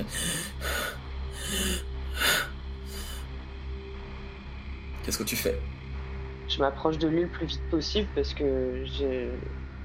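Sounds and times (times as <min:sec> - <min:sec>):
voice imitating laboured wheezing breathing: 0:00.0 - 0:03.2
speech: 0:05.0 - 0:05.9, 0:06.5 - 0:09.7.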